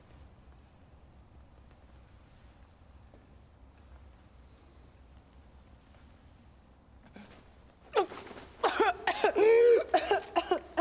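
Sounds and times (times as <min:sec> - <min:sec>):
woman coughing up blood and choking: 0:08.0 - 0:10.8.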